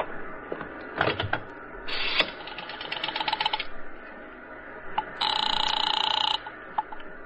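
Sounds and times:
steady buzzing telephone ring tone: 1.9 - 3.7, 5.2 - 6.6
telephone rotary dial clicking and whirring: 2.0 - 3.7, 5.0 - 7.0.

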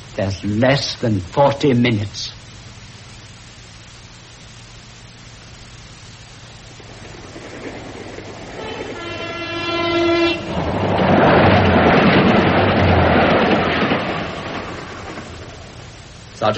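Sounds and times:
speech: 0.2 - 2.4
train rumbling past with roar of rolling wheels: 6.6 - 16.5
long steady train horn blast: 8.5 - 10.8.

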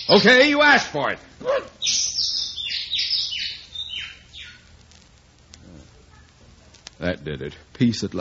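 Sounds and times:
bird chirping at a window: 0.0 - 0.6, 1.7 - 4.7
speech: 0.1 - 2.0, 7.0 - 8.1.

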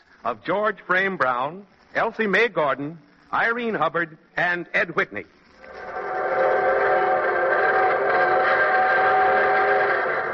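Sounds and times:
speech: 0.2 - 5.4
evening train whistle: 5.9 - 10.3.

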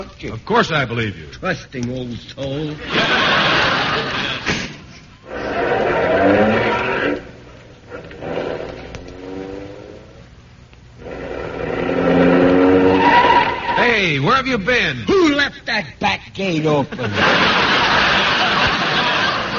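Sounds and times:
speech: 0.0 - 4.4, 14.5 - 17.7
laughter: 2.8 - 5.1, 16.6 - 19.5
tires squealing: 5.3 - 7.3, 11.0 - 14.2
car engine revving hard: 8.1 - 10.3, 11.0 - 13.8.

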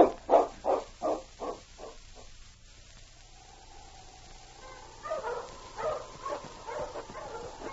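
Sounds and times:
dogs barking: 0.0 - 2.3, 4.2 - 7.7
dog whining: 4.4 - 7.7.

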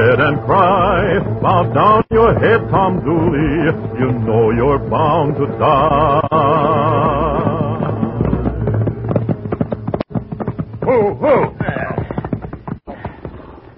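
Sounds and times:
speech: 0.1 - 7.1, 10.9 - 11.5
horse hooves clip-clopping: 0.8 - 13.7
brief sharp knocks: 6.8 - 13.7.

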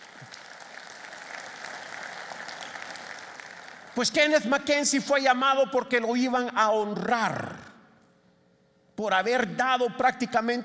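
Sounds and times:
large crowd applauding: 0.0 - 4.0
speech: 4.0 - 7.7, 9.0 - 10.6.

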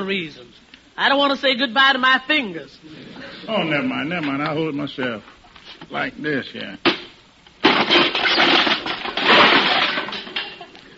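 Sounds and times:
speech: 0.0 - 7.0
hammer smashing a wooden birdhouse: 6.9 - 10.5
clatter of breaking boards and debris: 6.9 - 10.7
wood splintering and cracking: 7.6 - 10.5.

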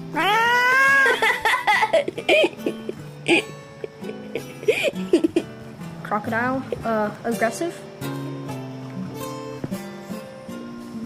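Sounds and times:
cats meowing and caterwauling: 0.1 - 3.5
laughter: 0.8 - 5.5
speech: 2.2 - 2.7, 3.3 - 3.5, 6.1 - 7.9.

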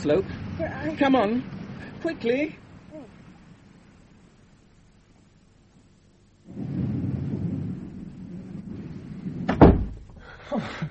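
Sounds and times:
speech: 0.0 - 2.6, 10.5 - 10.8
rain shower: 0.0 - 10.8
rustle: 0.0 - 10.8.

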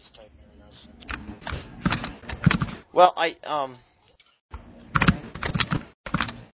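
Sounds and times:
rapid uneven computer keyboard typing: 1.1 - 2.8, 4.9 - 6.5
speech: 3.0 - 3.9.

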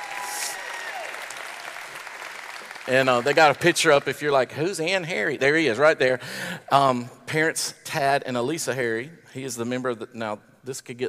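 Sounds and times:
crowd applauding: 0.0 - 4.2
speech: 2.9 - 11.0.

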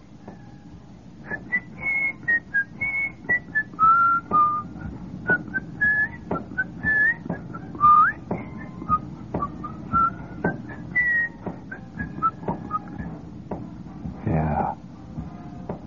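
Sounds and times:
murmur: 0.2 - 15.8
several people whistling a lively tune outdoors: 1.2 - 13.2.

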